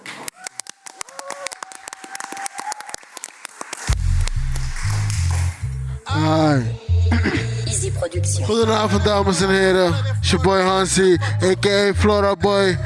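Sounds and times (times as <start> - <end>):
audience applauding with brisk scattered claps: 0.0 - 5.8
loud thumping bass-heavy music: 3.9 - 10.5
speech: 6.2 - 12.8.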